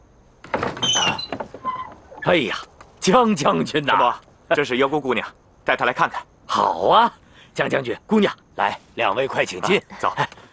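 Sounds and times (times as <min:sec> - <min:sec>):
house door being opened with scraping creaking swing: 0:00.4 - 0:02.3
speech: 0:02.2 - 0:10.4.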